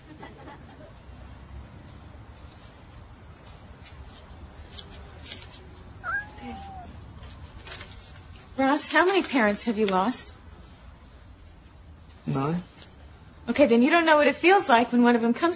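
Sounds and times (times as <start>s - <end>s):
faint shuffling: 2.3s - 10.0s
cat meowing: 6.0s - 7.0s
speech: 8.6s - 10.4s, 12.4s - 12.7s, 13.6s - 15.5s.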